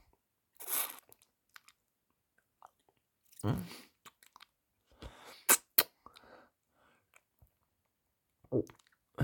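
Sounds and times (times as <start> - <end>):
person chewing and swallowing food: 0.6 - 6.3, 6.9 - 9.1
sharp mouth clicks: 5.5 - 6.3.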